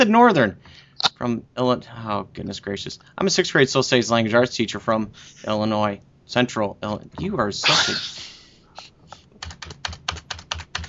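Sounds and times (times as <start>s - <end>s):
speech: 0.0s - 8.3s
forceful tapping on a computer keyboard: 9.2s - 10.8s.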